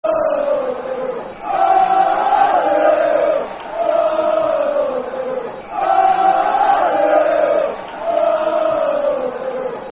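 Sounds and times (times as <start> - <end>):
football crowd chanting: 0.0 - 9.8.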